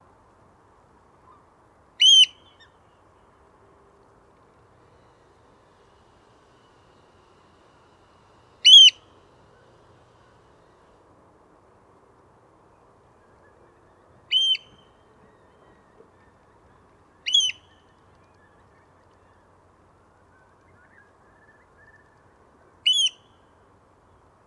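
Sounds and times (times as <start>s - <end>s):
oystercatcher calling on the Blyth Estuary: 2.0s - 2.7s, 8.6s - 9.8s, 13.2s - 18.6s, 22.8s - 23.3s.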